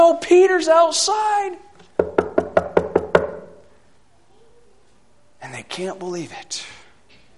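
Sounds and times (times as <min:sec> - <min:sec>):
speech: 0:00.1 - 0:02.1, 0:05.4 - 0:06.8
knocking on a wooden door: 0:02.0 - 0:03.6.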